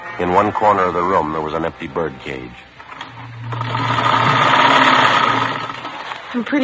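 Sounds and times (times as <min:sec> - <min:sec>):
speech: 0:00.2 - 0:02.7, 0:06.3 - 0:06.6
sewing machine running: 0:02.9 - 0:06.6.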